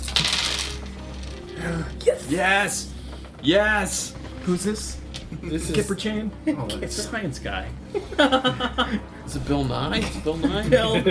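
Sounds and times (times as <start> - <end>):
dice clattering across a hard surface: 0.0 - 1.6
speech: 1.6 - 11.0
laughter: 7.9 - 11.0.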